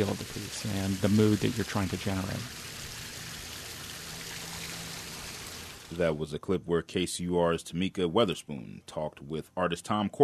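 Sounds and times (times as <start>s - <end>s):
speech: 0.0s - 2.7s, 5.9s - 10.2s
fountain jets splashing around water sculptures: 0.0s - 6.1s.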